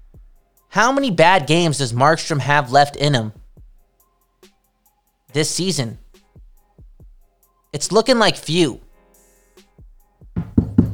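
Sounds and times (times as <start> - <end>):
speech: 0.7 - 3.4, 5.3 - 6.0, 7.7 - 8.8
firm knocking on wood: 10.4 - 10.9
soft sliding thuds: 10.4 - 10.9.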